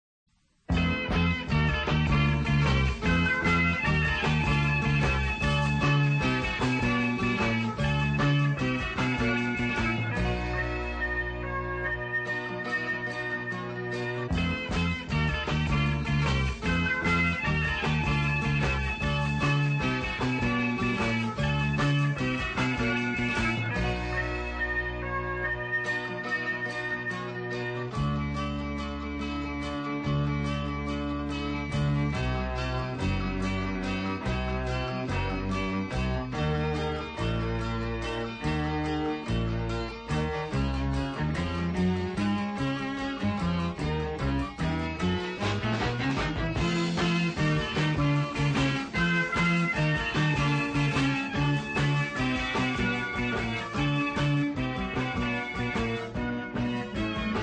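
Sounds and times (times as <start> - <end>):
pop rock guitar: 0.7 - 57.4
pop rock organ: 0.7 - 57.4.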